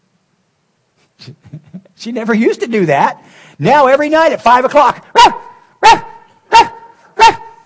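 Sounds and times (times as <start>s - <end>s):
speech: 1.2s - 6.0s
pet dog barking: 5.2s - 7.6s.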